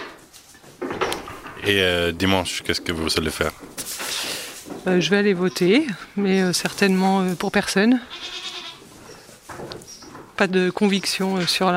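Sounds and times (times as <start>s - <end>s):
speech: 1.6s - 3.7s, 4.8s - 8.4s, 10.4s - 11.7s
goats bleating in a nasal chorus: 8.0s - 8.9s.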